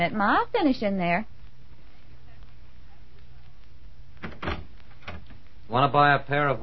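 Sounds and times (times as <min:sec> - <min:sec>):
speech: 0:00.0 - 0:01.4, 0:05.7 - 0:06.6
quiet room hum: 0:00.0 - 0:06.6
front door opening with clunks and rattle: 0:04.2 - 0:05.4.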